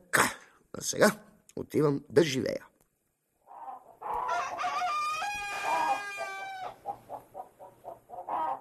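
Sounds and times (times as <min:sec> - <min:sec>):
speech: 0:00.8 - 0:02.7
rooster clucking: 0:03.4 - 0:08.5
rooster crowing: 0:04.0 - 0:06.8.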